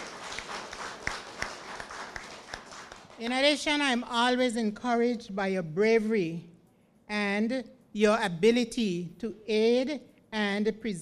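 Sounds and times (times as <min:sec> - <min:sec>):
audience applause: 0:00.0 - 0:03.2
speech: 0:03.2 - 0:06.5, 0:07.1 - 0:11.0.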